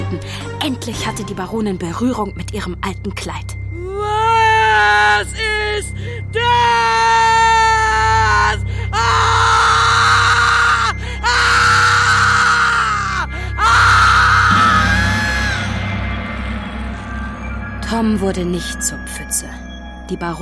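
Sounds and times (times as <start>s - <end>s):
low droning background: 0.0s - 20.4s
speech: 0.1s - 10.1s, 17.9s - 20.4s
ghost woman screaming: 3.8s - 5.8s, 6.4s - 15.8s.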